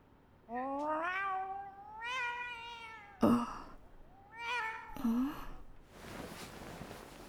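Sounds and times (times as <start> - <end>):
pet cat growling and yowling: 0.5 - 5.4.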